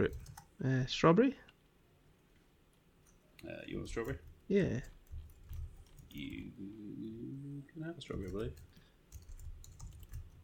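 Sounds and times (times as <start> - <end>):
typing on a computer keyboard: 0.0 - 0.5, 3.0 - 6.5, 8.1 - 10.4
speech: 0.0 - 1.4, 3.4 - 5.0, 6.1 - 8.8.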